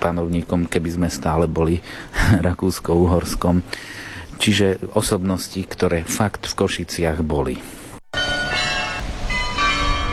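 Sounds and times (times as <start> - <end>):
speech: 0.1 - 7.8
carillon playing a melody: 8.1 - 10.1.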